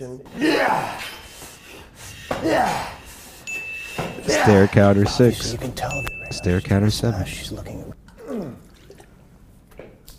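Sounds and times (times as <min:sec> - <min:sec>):
speech: 0:00.0 - 0:01.2, 0:02.3 - 0:03.0, 0:04.2 - 0:08.0
vocal grunt: 0:00.3 - 0:01.2, 0:02.3 - 0:03.0, 0:04.2 - 0:04.8, 0:08.1 - 0:08.7
person spitting out water: 0:08.1 - 0:09.2.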